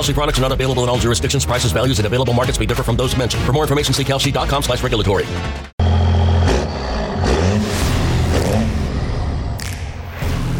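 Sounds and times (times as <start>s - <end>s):
speech: 0.0s - 5.7s
loud diesel engine idling and revving: 5.8s - 9.8s.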